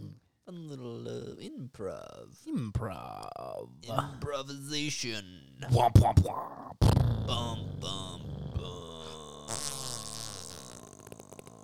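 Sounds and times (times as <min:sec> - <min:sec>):
speech: 0:00.5 - 0:08.9
fart sound: 0:06.8 - 0:11.6.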